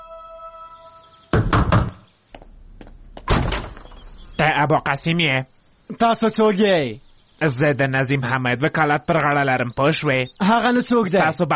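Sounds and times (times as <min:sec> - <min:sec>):
lawyer knocking on a door: 0:01.3 - 0:02.5
speech: 0:04.4 - 0:11.5.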